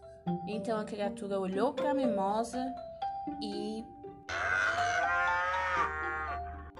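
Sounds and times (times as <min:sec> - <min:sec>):
speech: 0:00.4 - 0:04.8
cow mooing: 0:04.3 - 0:06.7.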